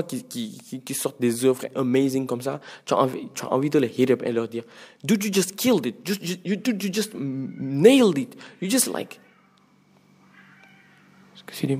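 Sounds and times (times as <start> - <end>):
speech: 0.0 - 9.2, 11.4 - 11.7
steady low hum: 0.0 - 11.7
neighbours' cats meowing: 9.1 - 11.6.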